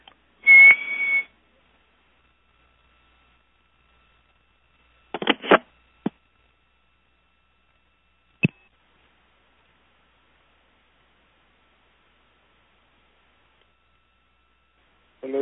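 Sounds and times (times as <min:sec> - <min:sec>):
person whistling a short steady high note over a telephone line: 0:00.4 - 0:01.3.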